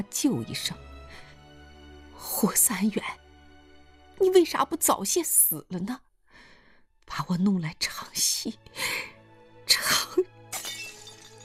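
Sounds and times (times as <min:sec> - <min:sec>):
speech: 0:00.0 - 0:01.2, 0:02.2 - 0:03.2, 0:04.2 - 0:06.1, 0:07.1 - 0:09.1, 0:09.7 - 0:10.3
brief glass clink: 0:10.5 - 0:11.4
glass IV drip bottle smashing on a hard floor: 0:10.5 - 0:11.4
scattering glass shards and tinkling debris: 0:10.6 - 0:11.4.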